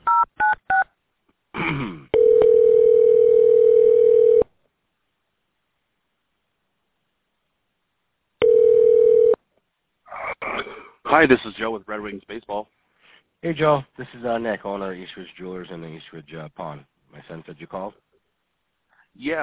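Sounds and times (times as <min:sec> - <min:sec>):
telephone keypad tones dialing an extension: 0:02.2 - 0:04.4, 0:08.4 - 0:09.4
speech: 0:11.2 - 0:12.8, 0:13.4 - 0:18.0, 0:19.2 - 0:19.4.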